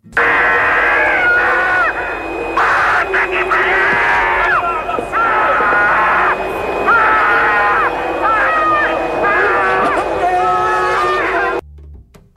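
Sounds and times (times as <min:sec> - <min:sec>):
steady hiss and whine: 0:00.0 - 0:11.6
racing driver screaming inside his helmet after winning his home race in Brazil: 0:00.2 - 0:11.6.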